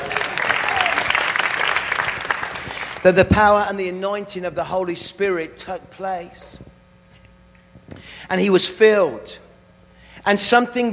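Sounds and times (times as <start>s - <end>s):
audience applause: 0.0s - 3.0s
speech: 3.0s - 6.6s, 8.3s - 9.4s, 10.2s - 10.9s.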